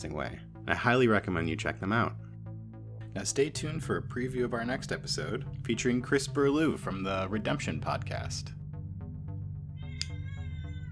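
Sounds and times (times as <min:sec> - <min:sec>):
speech: 0:00.0 - 0:02.2, 0:03.1 - 0:08.6
cat meowing loudly: 0:09.8 - 0:10.9.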